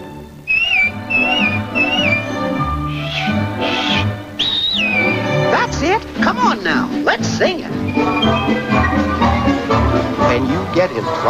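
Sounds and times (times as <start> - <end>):
soft orchestral music: 0.0 - 11.2
person whistling a bright short tune: 0.5 - 5.4, 7.8 - 9.5
speech: 10.8 - 11.2.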